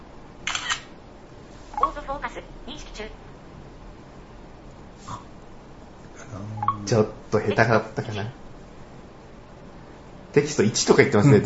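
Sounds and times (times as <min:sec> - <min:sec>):
smartphone camera shutter click taking a photo with automatic flash: 0:00.5 - 0:00.9
speech: 0:02.1 - 0:03.4, 0:06.3 - 0:08.4, 0:10.3 - 0:11.4.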